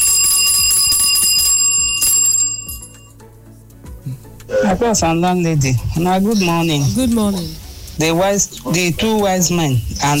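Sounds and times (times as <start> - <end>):
bright metallic bell ringing with a rapid rattling clatter: 0.0 - 3.2
speech: 4.1 - 10.1.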